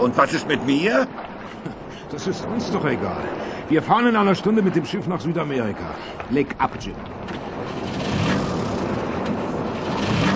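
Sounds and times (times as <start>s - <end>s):
speech: 0.0s - 7.4s
boat engine with spark plug removed cranking without starting: 6.1s - 10.3s.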